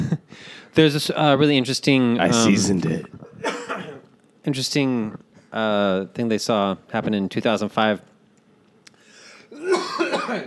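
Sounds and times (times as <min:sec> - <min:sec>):
speech: 0:00.8 - 0:03.2, 0:04.4 - 0:08.1
harsh cough: 0:03.2 - 0:04.1, 0:09.6 - 0:10.4.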